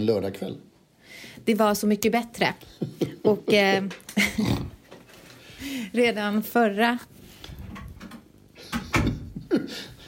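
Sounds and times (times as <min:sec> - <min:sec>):
speech: 0:00.0 - 0:04.8, 0:05.6 - 0:07.1
door pushed shut with creak and thud: 0:08.7 - 0:09.3.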